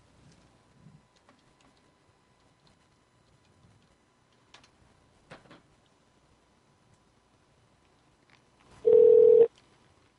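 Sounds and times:
steady dialed-call telephone tone: 8.8 - 9.5
phone redialing clicks: 8.9 - 9.5.

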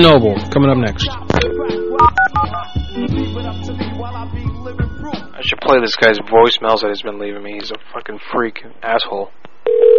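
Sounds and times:
speech: 0.0 - 1.8, 5.4 - 9.4
touch-tone dialing of a telephone number: 1.5 - 2.7, 9.7 - 9.9.

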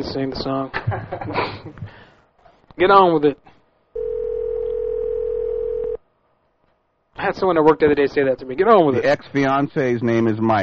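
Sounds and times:
speech: 0.0 - 2.1, 2.8 - 3.5, 7.2 - 10.6
telephone dial tone while placing a call: 4.0 - 6.0.

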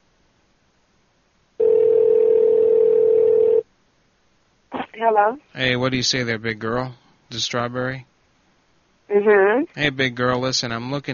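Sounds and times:
telephone dial tone on a call: 1.6 - 3.6
speech: 5.0 - 8.1, 9.1 - 11.1.

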